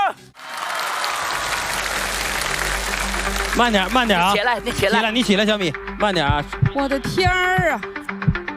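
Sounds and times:
audience applause at a live acrobatics show: 0:00.4 - 0:04.4
speech: 0:03.6 - 0:08.2.

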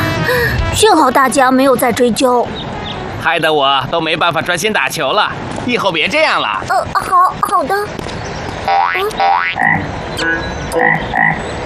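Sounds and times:
speech: 0:00.8 - 0:02.6, 0:03.2 - 0:11.6
cartoonish frog croaking: 0:08.6 - 0:11.4.

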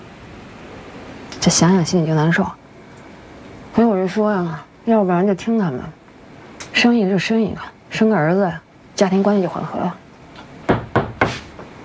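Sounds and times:
speech: 0:01.4 - 0:02.6, 0:03.8 - 0:06.0, 0:06.8 - 0:10.0
knocking on a locked door: 0:10.7 - 0:11.7.

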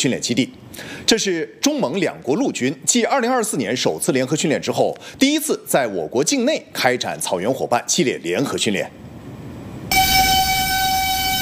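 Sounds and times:
speech: 0:00.0 - 0:09.1
military train horn blast at the Erenhot border crossing: 0:09.9 - 0:11.4.

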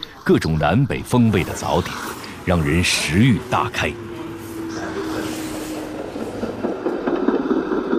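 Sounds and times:
speech: 0:00.3 - 0:04.1
train rumbling across a railway bridge over the Han River: 0:00.8 - 0:07.9
rhythmic clattering of train wheels on rails: 0:01.0 - 0:07.9
faint whining tone: 0:01.3 - 0:07.0.

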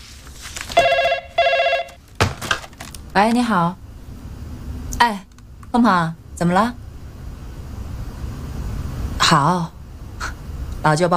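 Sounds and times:
electronic telephone ring tone on an outgoing call: 0:00.8 - 0:02.0
speech: 0:03.2 - 0:03.8, 0:05.0 - 0:06.8, 0:09.3 - 0:09.8, 0:10.8 - 0:11.1.

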